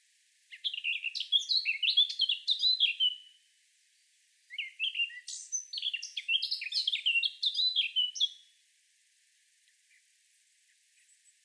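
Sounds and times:
Eurasian blackcap Sylvia atricapilla warbling song: 0.5 - 3.4, 4.5 - 8.5.

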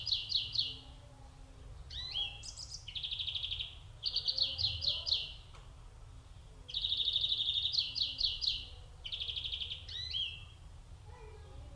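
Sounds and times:
European greenfinch singing: 0.0 - 0.9, 1.8 - 5.6, 6.7 - 10.6.

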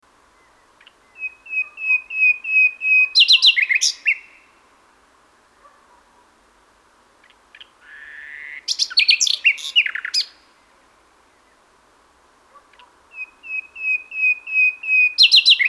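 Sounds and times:
common nightingale Luscinia megarhynchos singing: 0.3 - 4.5, 8.6 - 10.4, 13.1 - 15.6.

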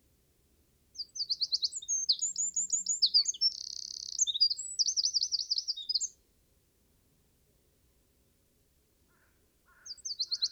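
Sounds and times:
Eurasian wren singing, Troglodytes troglodytes: 1.0 - 6.1, 9.8 - 10.5.

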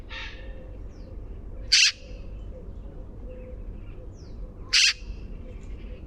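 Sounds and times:
Eurasian magpie Pica pica grating chack calls: 1.7 - 2.1, 4.7 - 5.1.

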